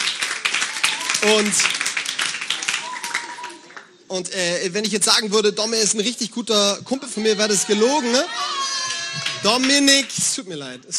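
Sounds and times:
cheers: 0.0 - 3.9, 7.2 - 10.1
crowd clapping and applauding: 0.0 - 4.1, 7.4 - 10.2
speech: 1.2 - 1.8, 4.1 - 8.6, 9.4 - 10.9
brief shouted voices: 2.6 - 3.7, 7.0 - 9.6.

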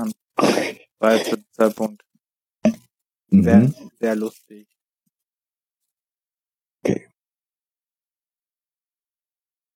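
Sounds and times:
speech: 0.0 - 2.0, 3.3 - 4.7, 6.8 - 7.1
short guttural burp: 2.6 - 3.7, 6.8 - 7.2.

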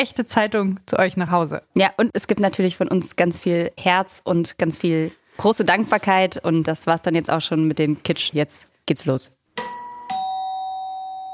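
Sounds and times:
speech: 0.0 - 9.7
doorbell ding-dong chime: 9.6 - 11.3.

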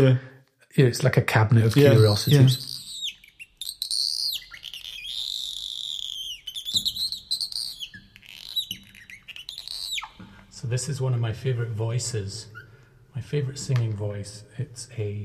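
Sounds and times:
speech: 0.0 - 2.8, 10.7 - 12.6, 13.2 - 15.2
robin singing: 1.7 - 10.6.

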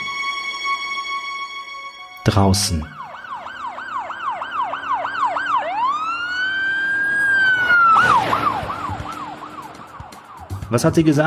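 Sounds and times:
police siren on an unmarked police car speeding along a street: 2.0 - 10.9
speech: 2.3 - 3.0, 10.7 - 11.2
low traffic rumble: 2.9 - 11.2.

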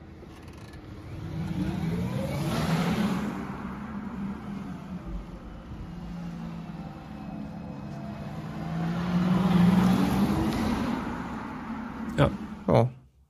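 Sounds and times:
electric SUV driving by with low hum and whine: 0.0 - 12.7.

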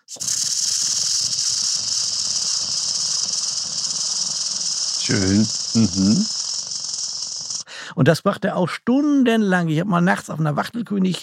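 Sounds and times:
common grasshopper warbler reeling song: 0.0 - 7.7
speech: 0.1 - 0.7, 5.1 - 6.4, 8.0 - 11.2
low voiced sound: 5.0 - 6.3.

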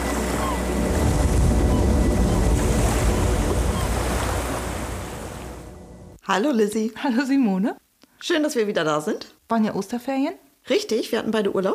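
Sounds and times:
steady surf washing ashore: 0.0 - 6.1
gusty wind: 0.0 - 6.2
speech: 6.3 - 11.7.

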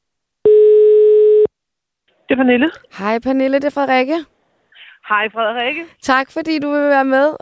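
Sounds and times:
electronic phone ringing tone as a phone call is placed: 0.5 - 1.5
speech: 2.3 - 4.3, 5.0 - 7.4.

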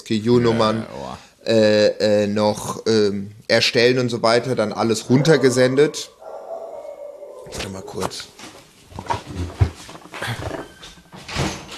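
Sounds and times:
speech: 0.1 - 6.2, 7.5 - 8.4, 9.0 - 9.6
dog making noises: 5.1 - 8.3.

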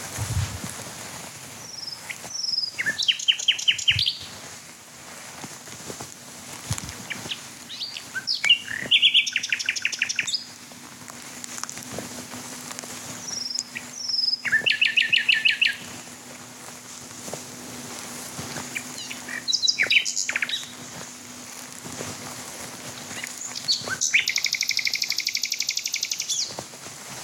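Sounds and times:
male common nightingale singing in fields with trees: 1.6 - 4.4, 7.0 - 10.5, 13.2 - 16.0, 18.7 - 21.0, 23.2 - 26.6.

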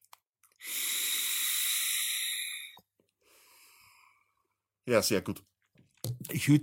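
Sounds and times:
person inhaling from an e-cigarette with mango vanilla chai liquid: 0.6 - 4.2
breathy exhale of e-cigarette vapour: 0.6 - 4.4
speech: 4.9 - 5.5, 6.4 - 6.6.

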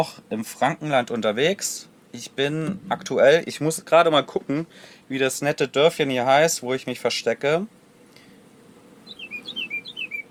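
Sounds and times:
speech: 0.0 - 7.8
bird chirping through open van door in a village in Franconia: 9.0 - 10.2.

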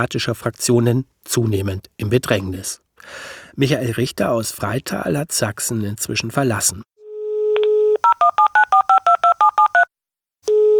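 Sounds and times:
speech: 0.0 - 6.9
steady telephone dial tone: 7.0 - 10.7
short two-pitch telephone keypad beeps dialling a number: 7.6 - 9.9.

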